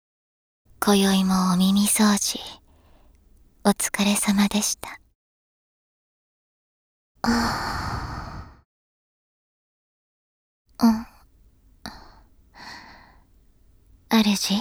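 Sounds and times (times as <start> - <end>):
speech: 0.8 - 2.6, 3.6 - 5.0, 7.2 - 7.8, 10.8 - 11.1, 14.1 - 14.5
long soft breath blown into the ear: 7.3 - 8.6.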